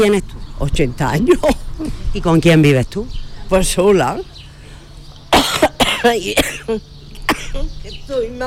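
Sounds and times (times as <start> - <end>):
speech: 0.0 - 4.3, 6.0 - 6.9, 7.6 - 8.4
elderly woman coughing harshly: 5.3 - 7.7.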